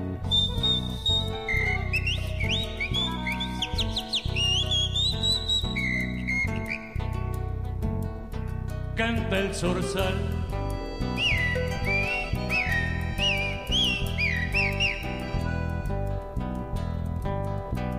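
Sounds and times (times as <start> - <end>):
instrumental backing music: 0.0 - 17.9
person whistling in imitation of a calandria mockingbird: 0.2 - 7.0, 11.1 - 15.7
speech: 9.0 - 10.3.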